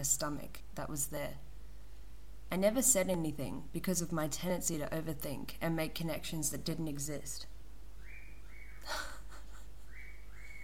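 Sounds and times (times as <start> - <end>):
speech: 0.0 - 1.5, 2.5 - 7.5
pet bird whistling: 9.9 - 10.6.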